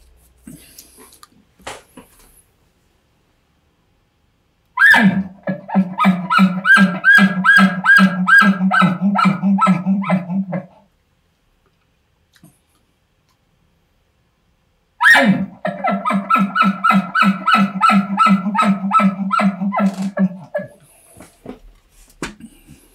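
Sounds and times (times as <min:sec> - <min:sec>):
imitated elk barks: 0:04.8 - 0:10.8, 0:15.0 - 0:20.8
imitated elk guttural chuckling pulses: 0:04.8 - 0:10.8, 0:15.0 - 0:20.8.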